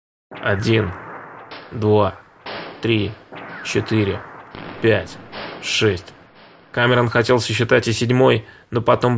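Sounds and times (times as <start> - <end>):
speech: 0.3 - 1.0, 1.7 - 2.2, 2.8 - 6.2, 6.8 - 9.1
loud booming gunshots with tail: 0.3 - 7.4.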